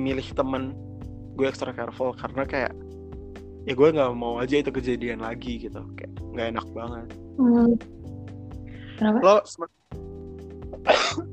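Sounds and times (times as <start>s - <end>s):
speech: 0.0s - 2.9s, 3.6s - 8.0s, 9.0s - 10.2s
single short husky cough: 10.8s - 11.3s.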